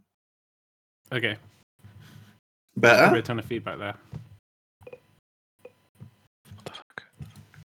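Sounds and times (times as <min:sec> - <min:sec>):
speech: 0:01.1 - 0:01.6, 0:02.8 - 0:04.2
man whispering close to the microphone: 0:02.8 - 0:03.2.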